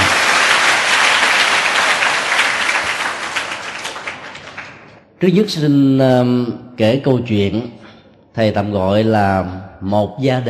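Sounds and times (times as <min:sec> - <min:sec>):
audience applause: 0:00.0 - 0:05.0
speech: 0:05.2 - 0:07.8, 0:08.4 - 0:10.4.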